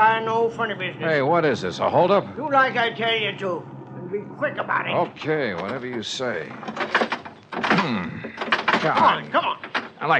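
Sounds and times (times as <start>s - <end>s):
speech: 0.0s - 10.1s
car door metal groaning and creaking: 4.8s - 10.1s
stuck car door being yanked and rattled: 5.6s - 10.1s.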